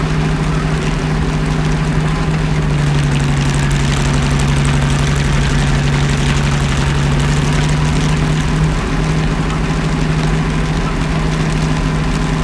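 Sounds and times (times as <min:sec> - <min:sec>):
Panther engine revving: 0:00.0 - 0:12.4.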